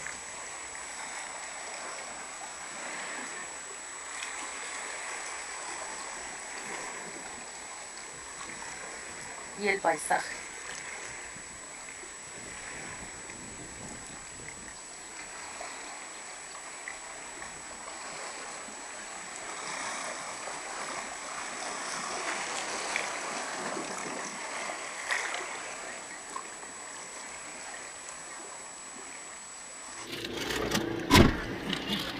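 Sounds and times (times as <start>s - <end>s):
coastal sea water rushing: 0.0s - 32.1s
speech: 9.6s - 10.4s.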